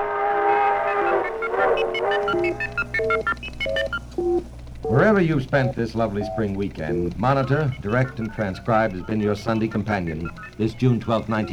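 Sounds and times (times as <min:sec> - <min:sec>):
passing crack train whistle: 0:00.0 - 0:03.2
speech: 0:01.9 - 0:11.5.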